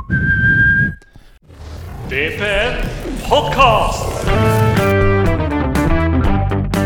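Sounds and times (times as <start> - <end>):
person whistling an intro tune: 0.0 - 1.1
low rumbling noise: 1.4 - 6.7
speech: 2.1 - 4.6.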